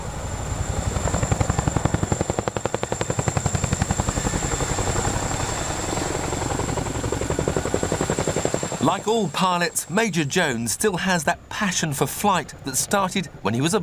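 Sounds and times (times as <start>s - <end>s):
large helicopter rotor thumping: 0.0s - 10.0s
large helicopter engine whine: 0.0s - 13.4s
speech: 8.9s - 13.8s.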